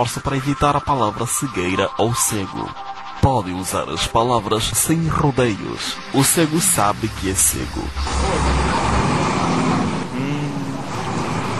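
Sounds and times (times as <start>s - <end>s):
speech: 0.0s - 8.6s
road traffic roar of passing vehicles on a rainy day: 6.4s - 11.5s.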